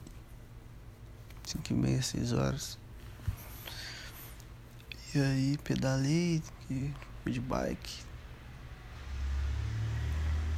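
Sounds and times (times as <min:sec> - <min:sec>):
speech: 0:01.5 - 0:02.8, 0:05.2 - 0:08.1
motorcycles rumbling past outside: 0:08.7 - 0:10.5.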